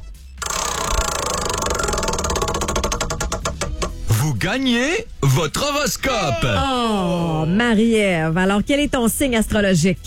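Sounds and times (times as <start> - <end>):
prize wheel being spun during a game segment: 0.4 - 4.1
speech: 4.3 - 10.0.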